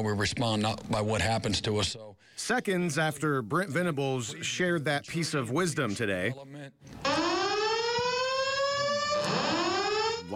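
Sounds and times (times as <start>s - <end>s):
speech: 0.0s - 7.3s
false alarm wailing like a siren: 7.0s - 10.3s.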